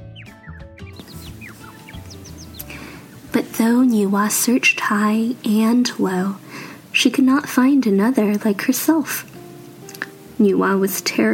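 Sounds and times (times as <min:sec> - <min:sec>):
flock of birds chirping and tweeting in flight: 0:00.0 - 0:05.1
speech: 0:03.3 - 0:06.4, 0:07.0 - 0:09.3, 0:10.4 - 0:11.3.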